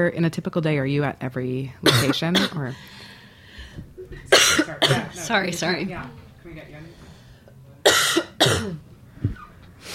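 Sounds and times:
speech: 0.0s - 3.1s, 3.8s - 7.0s, 8.6s - 9.9s
person coughing and hacking: 1.9s - 2.7s, 4.3s - 5.2s, 7.8s - 8.8s.

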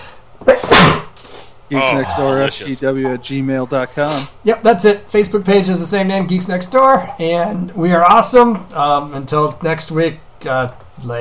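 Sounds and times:
sneeze: 0.5s - 1.2s
speech: 1.7s - 11.1s.

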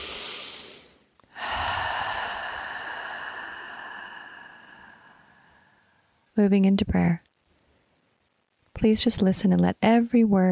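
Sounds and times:
deep breath taken in and out: 0.0s - 6.2s
speech: 6.4s - 7.2s, 8.8s - 10.5s.

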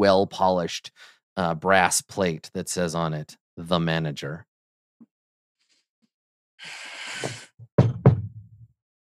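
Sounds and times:
speech: 0.0s - 4.5s, 6.6s - 7.4s
heavy resonant knocking on a wooden door: 7.6s - 8.6s.

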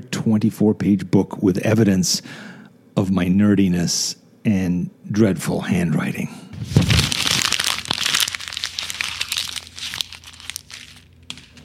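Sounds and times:
speech: 0.0s - 7.0s
paper sheet being crumpled into a ball: 6.6s - 11.6s.

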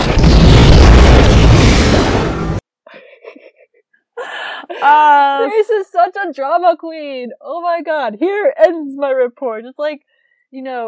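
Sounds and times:
ship weapons firing and exploding: 0.0s - 2.6s
speech: 4.8s - 10.8s.

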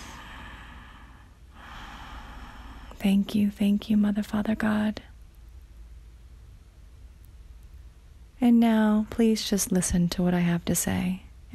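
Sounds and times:
person breathing in deeply: 0.0s - 3.0s
speech: 3.0s - 5.1s, 8.4s - 11.5s.

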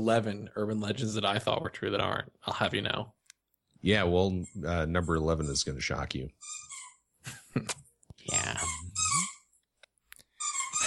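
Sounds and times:
speech: 0.0s - 3.2s, 3.8s - 6.6s, 7.2s - 8.7s
squeaky toy being squeezed: 4.4s - 7.1s, 8.3s - 9.6s, 10.3s - 10.8s.

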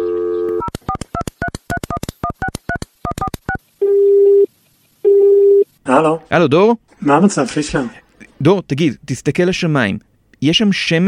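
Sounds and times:
telephone dial tone: 0.0s - 0.8s, 3.8s - 5.7s
speech: 5.9s - 11.0s.

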